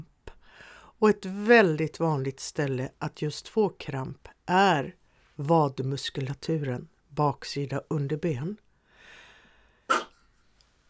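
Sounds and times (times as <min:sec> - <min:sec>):
speech: 0:01.0 - 0:08.6
small dog sneeze-like snort: 0:09.9 - 0:10.2.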